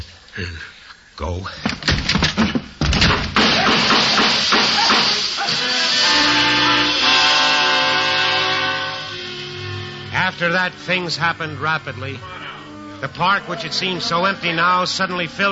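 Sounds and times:
speech: 0:00.0 - 0:02.5, 0:10.4 - 0:12.4, 0:13.0 - 0:15.5
door torn open: 0:01.7 - 0:05.8
rapid burst of sharp loud gunshots: 0:02.9 - 0:05.6
sustained shrill whistling and hissing: 0:04.1 - 0:10.2.

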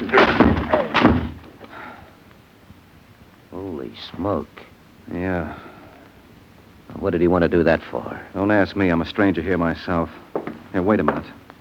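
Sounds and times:
door being forced open with a shoulder: 0:00.0 - 0:01.8
speech: 0:04.2 - 0:05.7, 0:07.0 - 0:10.2, 0:10.8 - 0:11.4.

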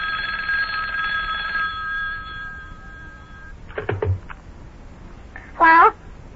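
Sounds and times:
telephone bell ringing in a sustained trill: 0:00.0 - 0:03.6.

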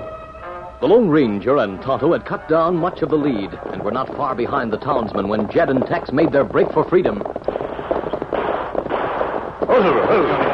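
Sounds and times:
speech: 0:00.8 - 0:07.5, 0:09.8 - 0:10.5
distant gunfire: 0:05.2 - 0:10.5.

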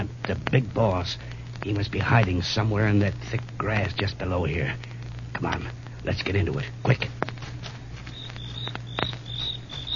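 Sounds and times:
low hum: 0:00.0 - 0:09.9
speech: 0:00.3 - 0:07.2
crickets chirping at night: 0:07.9 - 0:09.9.

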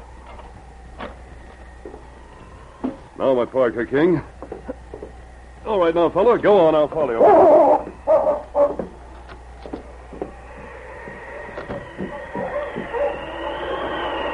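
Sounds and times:
continuous hum: 0:00.0 - 0:14.3
speech: 0:03.2 - 0:04.4, 0:05.7 - 0:07.6
dogs yelping: 0:07.1 - 0:09.0, 0:09.9 - 0:14.3
dogs snarling and barking in a scuffle by a creek bank in the snow: 0:07.2 - 0:09.0, 0:11.3 - 0:14.0.

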